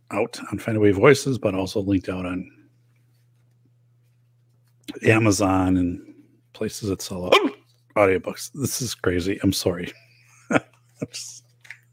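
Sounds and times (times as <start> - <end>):
low steady hum: 0.0 - 11.9
speech: 0.1 - 2.6, 4.9 - 11.4
hiccups: 7.3 - 7.6.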